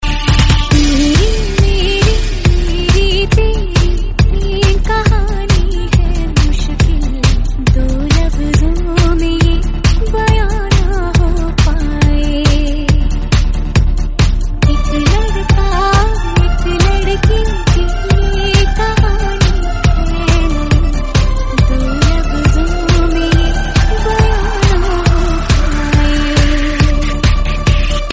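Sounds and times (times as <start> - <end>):
remix with female vocals: 0.0 - 28.1.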